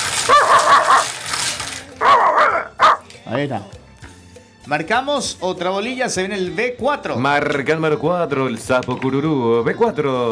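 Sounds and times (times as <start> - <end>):
dog barking and yipping: 0.2 - 1.1, 2.0 - 3.1
speech: 0.3 - 1.2, 3.3 - 3.8, 4.7 - 10.3.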